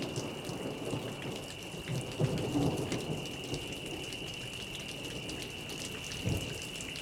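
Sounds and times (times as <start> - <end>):
steady rain pouring: 0.0 - 7.0.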